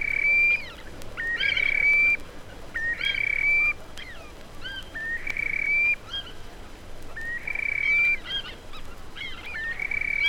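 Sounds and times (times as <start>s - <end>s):
Terek sandpipers calling on river shoals: 0.0s - 6.4s, 7.2s - 10.2s
steady low hiss: 0.0s - 10.2s.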